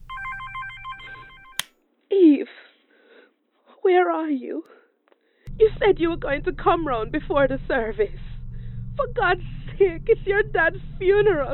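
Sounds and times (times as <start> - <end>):
phone pickup click: 0.0 - 1.7
telephone ringing with a trilling electronic tone: 0.0 - 1.7
speech: 3.9 - 4.8, 5.6 - 8.2, 9.0 - 11.5.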